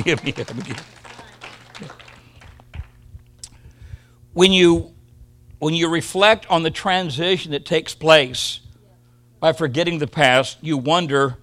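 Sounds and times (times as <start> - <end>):
speech: 0.0 - 1.0, 1.8 - 2.0, 4.4 - 4.9, 5.6 - 8.6, 9.4 - 11.4
crowd clapping hands in applause: 0.0 - 3.0.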